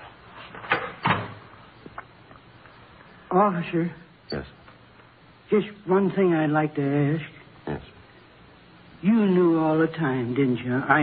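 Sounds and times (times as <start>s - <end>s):
wooden door opening and shutting: 0.6s - 1.5s
speech: 3.4s - 4.6s, 5.5s - 7.8s, 9.0s - 11.0s.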